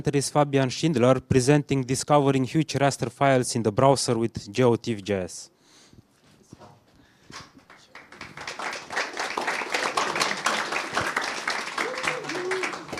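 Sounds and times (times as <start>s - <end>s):
speech: 0.0s - 5.6s
applause from a sizable audience: 7.7s - 12.9s.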